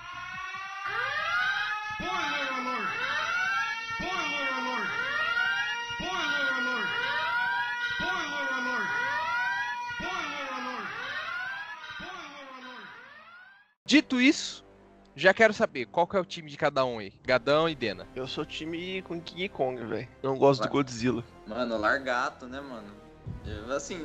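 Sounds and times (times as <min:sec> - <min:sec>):
siren-like alert sound effect as a spoiler warning: 0:00.0 - 0:13.7
speech: 0:13.9 - 0:14.6, 0:15.2 - 0:24.0.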